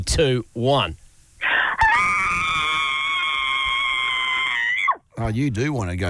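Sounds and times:
speech: 0.0s - 1.0s, 5.2s - 6.0s
woman's piercing high-pitched scream: 1.4s - 5.0s.

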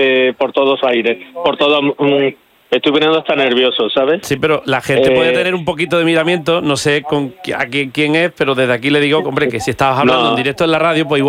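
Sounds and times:
speech: 0.0s - 11.2s
voice speaking in a thin narrow-band tone through a phone or small speaker: 5.0s - 7.7s, 9.0s - 11.2s.

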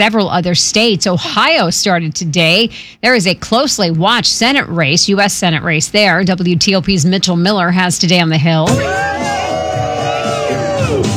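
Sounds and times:
speech: 0.0s - 9.3s
crowd of supporters cheering and whooping at an early-voting polling place: 8.7s - 11.1s.

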